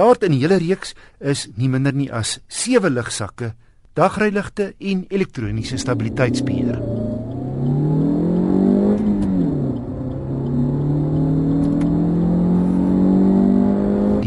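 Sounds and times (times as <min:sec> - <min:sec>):
speech: 0:00.0 - 0:06.9
1.6-litre 86 kW petrol car engine accelerating through the gears: 0:05.2 - 0:14.2.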